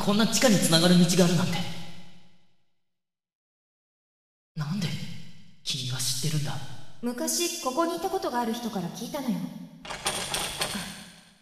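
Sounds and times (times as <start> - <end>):
speech: 0.0 - 1.8, 6.2 - 10.0
metallic clicking and scraping of a lock being picked open with picks: 9.9 - 10.8.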